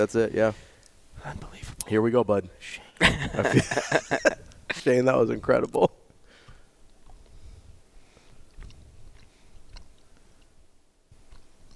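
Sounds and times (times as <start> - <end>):
speech: 0.0 - 6.0
laughter: 3.0 - 4.9
chewing a pear-flavored jelly bean: 6.8 - 7.4, 8.0 - 10.6, 11.2 - 11.7.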